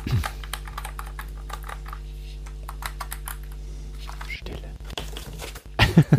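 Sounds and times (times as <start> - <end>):
typing on mechanical keyboard with clicky blue switches: 0.0 - 4.3.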